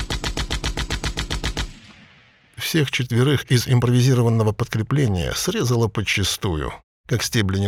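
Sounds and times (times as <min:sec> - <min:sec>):
cannon fire burst from a rusty nose turret with a single surviving gun: 0:00.0 - 0:02.6
speech: 0:02.6 - 0:07.6.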